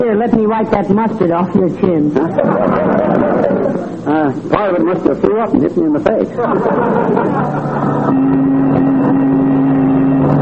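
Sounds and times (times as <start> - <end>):
speech: 0.0 - 8.6
laughter: 2.2 - 4.4, 5.9 - 8.1
car engine droning while driving: 6.9 - 10.3.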